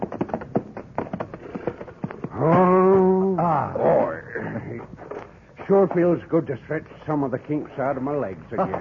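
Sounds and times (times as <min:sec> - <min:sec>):
horses' hooves clopping and shuffling at a hitching rail: 0:00.0 - 0:08.7
horse whinnying loudly: 0:01.3 - 0:04.9
speech: 0:05.7 - 0:08.7.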